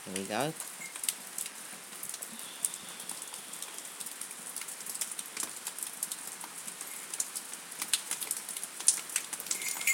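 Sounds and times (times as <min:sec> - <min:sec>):
steady rain falling outside on a wet May evening: 0:00.0 - 0:09.9.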